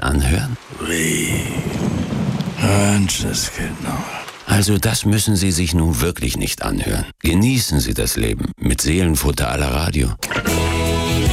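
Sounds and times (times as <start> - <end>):
steady rain hissing: 0.0 - 5.6
low rolling rumble of thunder: 0.6 - 4.2
speech: 2.9 - 10.6.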